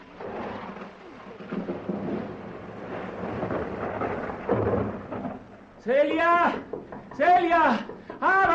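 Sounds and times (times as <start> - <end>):
heavy rain: 0.0 - 6.8
speech: 5.8 - 8.5.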